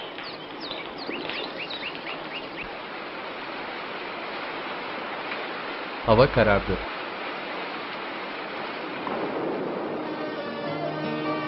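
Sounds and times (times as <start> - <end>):
small birds chirping and tweeting: 0.0 - 2.8
rain falling: 0.0 - 11.4
speech: 6.1 - 6.9.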